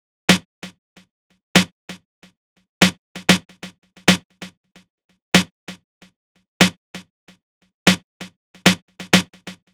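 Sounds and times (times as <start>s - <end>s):
snare drum in E-flat minor: 2.8s - 4.3s, 8.6s - 9.7s.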